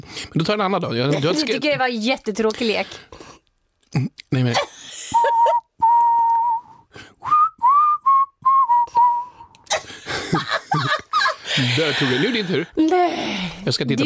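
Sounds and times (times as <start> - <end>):
speech: 0.0 - 3.3, 3.9 - 5.6, 11.7 - 14.0
laughter: 4.6 - 5.6, 9.7 - 12.7
person whistling a tune: 5.1 - 9.6.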